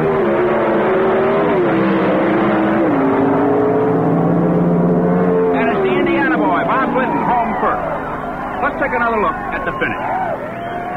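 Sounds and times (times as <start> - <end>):
two Pro Stock drag race cars launching down a quarter-mile strip: 0.0 - 10.9
crowd noise: 5.5 - 10.9.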